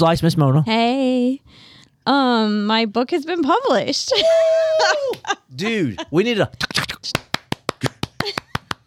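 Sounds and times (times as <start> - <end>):
speech: 0.0 - 7.2
single person clapping quickly: 7.1 - 8.8.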